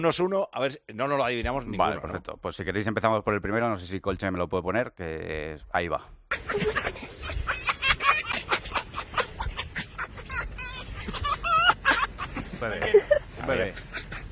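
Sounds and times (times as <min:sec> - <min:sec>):
speech: 0:00.0 - 0:07.1, 0:12.6 - 0:13.9
red fox chattering laugh-like cackles and yelps: 0:06.3 - 0:14.3.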